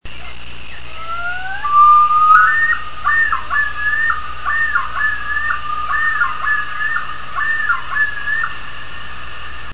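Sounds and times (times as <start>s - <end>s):
steady low background hiss: 0.1s - 9.7s
loon yodel: 0.9s - 8.6s.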